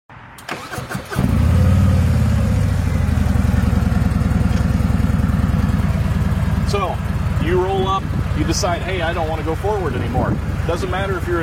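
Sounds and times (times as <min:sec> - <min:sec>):
motorcycle engine cranking and idling: 0:01.3 - 0:11.4
speech: 0:06.7 - 0:11.4.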